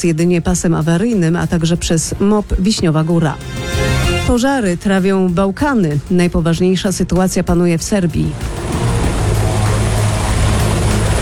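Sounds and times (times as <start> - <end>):
speech: 0.0 - 8.8
firefighting helicopter rotor: 8.3 - 11.2.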